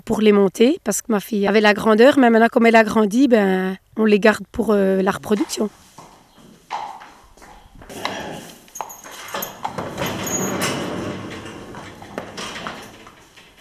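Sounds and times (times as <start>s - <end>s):
speech: 0.1s - 5.9s
small ponies' hooves clip-clopping: 5.2s - 13.6s.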